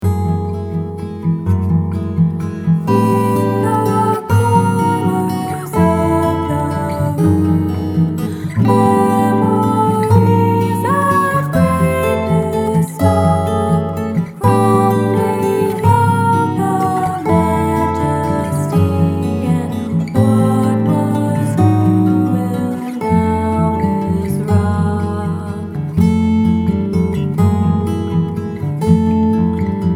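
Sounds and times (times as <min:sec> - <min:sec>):
alternative folk music: 0:00.0 - 0:29.9.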